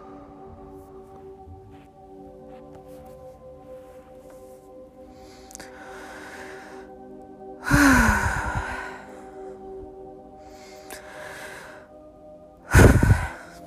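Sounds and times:
deep breathing during a guided meditation: 5.0s - 12.1s, 12.7s - 13.6s.

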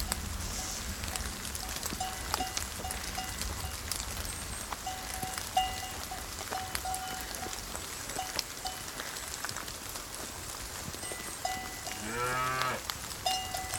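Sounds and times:
steady heavy rainfall on a pasture in fog-covered mountains: 0.0s - 13.7s
cowbells clanking: 1.9s - 3.9s, 4.8s - 9.0s, 11.0s - 12.6s, 13.2s - 13.7s
cow mooing on a rainy pasture in fog-covered mountains: 11.9s - 12.8s.

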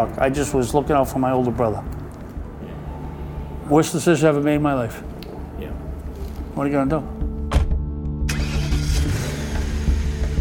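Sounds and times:
speech: 0.0s - 2.0s, 3.7s - 5.8s, 6.6s - 7.2s
car engine starting, revving and driving off at night: 8.2s - 10.3s.

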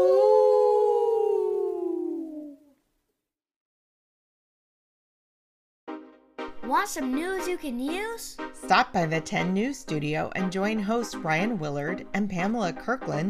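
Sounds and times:
human voice imitating a dog's howl in a song: 0.0s - 2.8s
speech: 6.7s - 13.2s.

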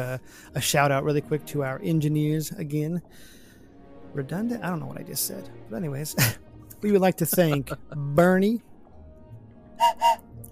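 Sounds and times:
speech: 0.0s - 3.4s, 4.1s - 8.7s, 9.8s - 10.4s
laughter: 7.2s - 8.0s
short sharp shrill whistle blasts: 9.8s - 10.3s.

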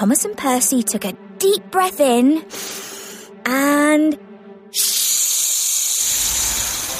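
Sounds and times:
speech: 0.0s - 5.3s
steam hissing out of steam engines: 4.8s - 6.9s.

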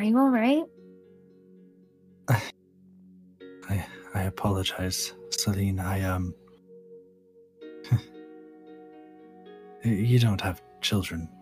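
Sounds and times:
speech: 0.0s - 0.8s, 2.3s - 2.6s, 3.7s - 6.4s, 7.8s - 8.1s, 9.8s - 11.3s
person gently clearing throat: 2.3s - 2.6s, 7.9s - 8.1s.

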